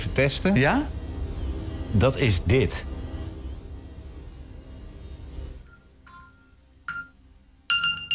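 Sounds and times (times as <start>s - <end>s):
low rumbling hum: 0.0s - 7.4s
speech: 0.2s - 1.0s, 1.9s - 2.9s
phone ringtone triggered via smartwatch find-phone: 5.4s - 8.1s.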